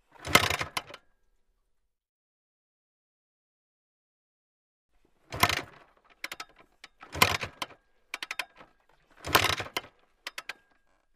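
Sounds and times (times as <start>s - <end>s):
motorcycle failing to start: 0.1s - 1.0s, 5.2s - 11.1s.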